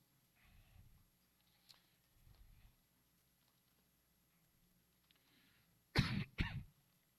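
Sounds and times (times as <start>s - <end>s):
sharp coughs: 6.0s - 6.7s.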